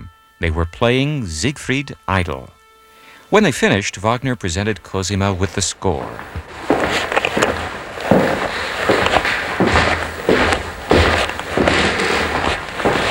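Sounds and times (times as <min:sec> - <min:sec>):
speech: 0:00.4 - 0:02.6, 0:03.3 - 0:06.7
heavy footsteps on wide oak stairs: 0:05.3 - 0:13.0.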